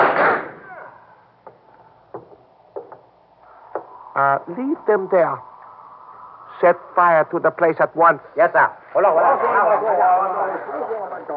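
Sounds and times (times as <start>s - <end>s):
gunshots as armed men attack a house: 0.0s - 0.8s
speech: 4.2s - 5.5s, 6.6s - 11.3s.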